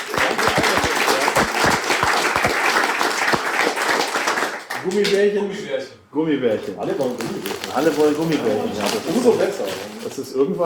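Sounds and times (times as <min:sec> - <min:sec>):
crowd applause with dense overlapping claps: 0:00.0 - 0:05.1
speech: 0:04.8 - 0:10.6.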